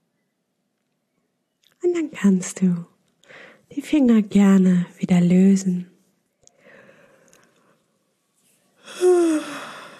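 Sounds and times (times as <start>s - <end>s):
speech: 1.8s - 5.9s
person yawning into a voiced tone and breathy exhale: 8.8s - 9.9s.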